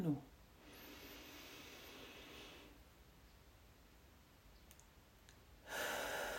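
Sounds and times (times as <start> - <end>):
speech: 0.0 - 0.3
long airy inhale: 0.6 - 2.8, 5.6 - 6.3
loud rushing breath: 0.6 - 2.8, 5.6 - 6.3.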